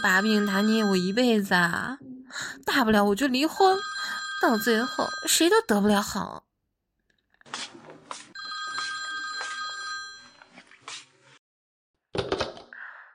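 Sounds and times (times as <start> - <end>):
telephone ringing with an electronic trill: 0.0 - 1.6, 3.5 - 5.8, 8.4 - 10.5
speech: 0.0 - 6.5.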